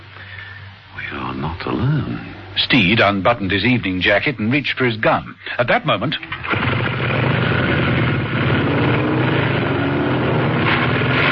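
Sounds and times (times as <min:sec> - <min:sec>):
speech: 0:01.4 - 0:06.8
two motorcycle engines revving while riding through a garage: 0:06.3 - 0:11.3.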